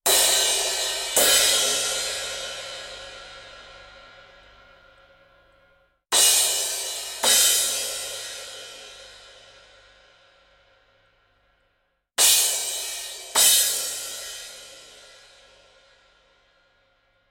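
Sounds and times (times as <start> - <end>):
cymbals: 0.1 - 4.8, 6.1 - 9.8, 12.2 - 16.1.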